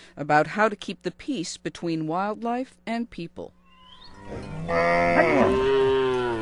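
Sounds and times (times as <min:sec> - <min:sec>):
speech: 0:00.1 - 0:03.6, 0:04.2 - 0:05.8
cattle from a herd of 11 mooing on a plain south of Nairobi, Kenya: 0:04.1 - 0:06.3.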